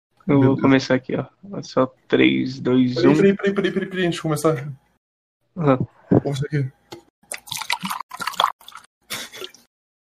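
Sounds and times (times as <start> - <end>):
speech: 0.3 - 4.8, 5.6 - 6.8
person drinking water with wet swallowing and sloshing: 7.2 - 9.7.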